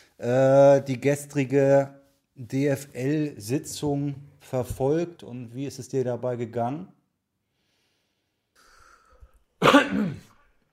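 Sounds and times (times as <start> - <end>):
speech: 0.2 - 7.0
single rough throaty cough: 9.6 - 10.5.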